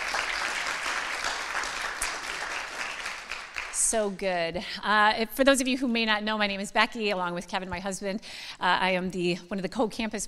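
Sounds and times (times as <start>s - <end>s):
crowd applauding: 0.0s - 4.0s
speech: 3.9s - 10.2s.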